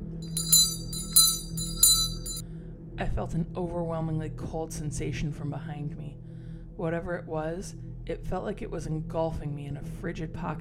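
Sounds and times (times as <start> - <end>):
low steady hum: 0.0 - 2.4
small bell ringing: 0.0 - 2.4
speech: 3.0 - 10.5.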